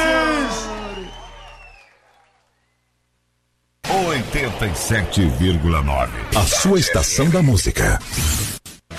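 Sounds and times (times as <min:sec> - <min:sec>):
crowd cheering with loud whoops: 0:00.0 - 0:02.8
speech: 0:04.6 - 0:08.6.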